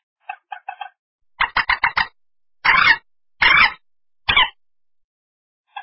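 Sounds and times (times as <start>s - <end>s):
common moorhen giving harsh clucking calls and croaks: 1.4s - 4.6s.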